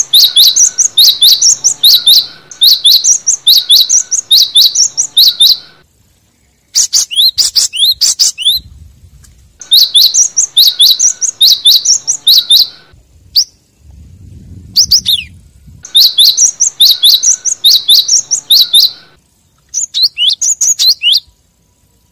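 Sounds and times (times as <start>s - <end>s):
low rumbling noise: 0.0s - 6.2s, 8.6s - 19.2s
lovebird chirping: 0.0s - 8.7s, 9.6s - 22.1s.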